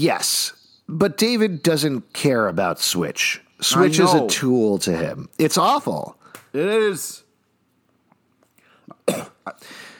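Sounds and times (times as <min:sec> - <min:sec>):
speech: 0:00.0 - 0:07.2, 0:09.1 - 0:09.9
harsh coughs: 0:09.0 - 0:09.6.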